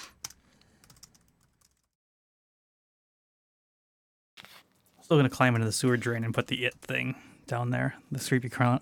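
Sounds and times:
typing a chat message on a computer keyboard: 0.0s - 1.9s
speech: 5.1s - 8.8s.

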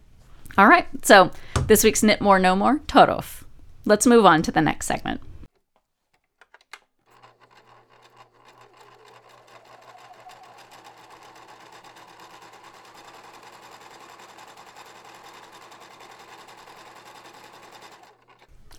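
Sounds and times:
speech: 0.6s - 5.3s
sewing machine running with rapid mechanical whir and low hum: 7.0s - 18.5s.

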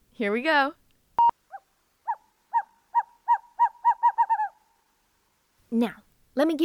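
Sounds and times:
speech: 0.2s - 0.8s, 5.7s - 6.6s
owl hooting: 1.4s - 4.9s.

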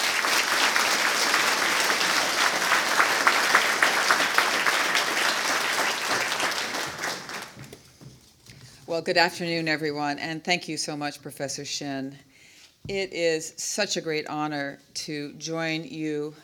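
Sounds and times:
audience applause welcoming a speaker to the podium at a lecture event: 0.0s - 7.8s
speech: 9.0s - 16.4s.

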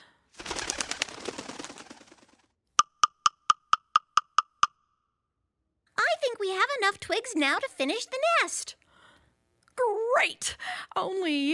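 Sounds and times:
rustling flapping noise: 0.4s - 2.6s
woodpecker pecking: 2.8s - 4.8s
speech: 6.4s - 8.8s, 10.2s - 11.5s.

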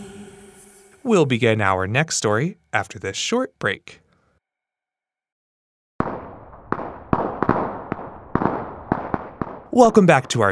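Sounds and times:
speech: 1.0s - 4.0s, 9.8s - 10.4s
firecrackers set off by neighborhood kids outside a home: 6.0s - 10.4s.

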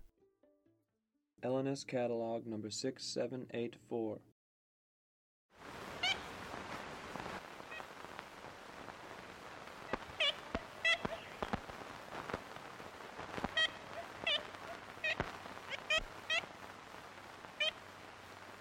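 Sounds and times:
speech: 1.4s - 4.3s
steady hiss: 5.6s - 18.6s
Ivory-billed Woodpecker nasal toots in old-growth forest: 9.9s - 11.6s, 13.1s - 16.5s.

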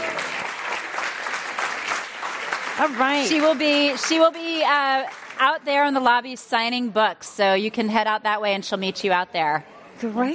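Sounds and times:
audience applause: 0.0s - 5.6s
speech: 2.8s - 10.3s.

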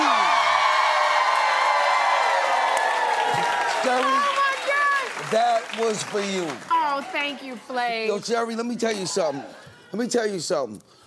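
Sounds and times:
large studio audience screaming and cheering: 0.0s - 6.4s
speech: 3.8s - 4.3s, 5.3s - 11.0s.

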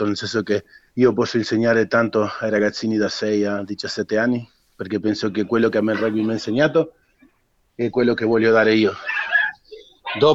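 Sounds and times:
speech: 0.0s - 7.0s, 7.8s - 9.2s, 10.1s - 10.3s
dogs barking: 5.8s - 6.6s, 9.0s - 10.3s.

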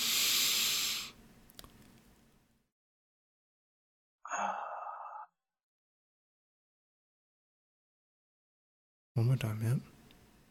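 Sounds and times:
person breathing in through the nose and exhaling: 0.0s - 1.2s, 4.3s - 5.3s
speech: 9.2s - 10.0s.

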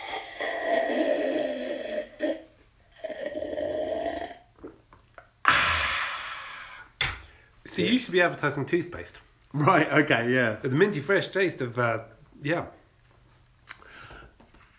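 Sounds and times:
person sipping a drink: 0.0s - 6.9s
sharp exhale-like burst: 5.5s - 7.5s
speech: 7.8s - 12.8s.

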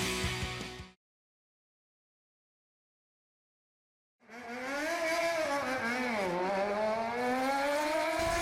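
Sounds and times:
motorcycle engine passing by outside: 4.2s - 8.4s.

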